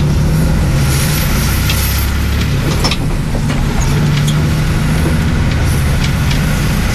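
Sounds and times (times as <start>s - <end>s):
bus engine rumble inside a bus driving along the coast: 0.0s - 6.9s
faint rattles and clicks inside a bus: 1.6s - 6.9s.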